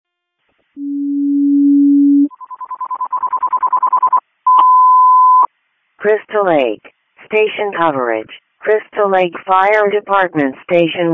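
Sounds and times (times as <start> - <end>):
speech: 0.8 - 1.2, 6.0 - 11.1
fire department dispatch alert tones for a general alarm: 0.8 - 5.5.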